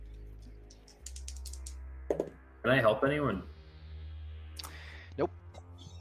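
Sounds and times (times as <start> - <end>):
two dice tumbling across a tabletop: 0.9 - 2.4
speech: 2.1 - 3.5, 5.2 - 5.4.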